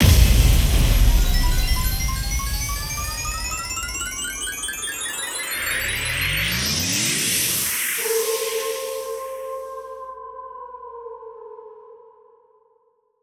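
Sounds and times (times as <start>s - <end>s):
slot machine big win jingle: 0.0s - 9.0s.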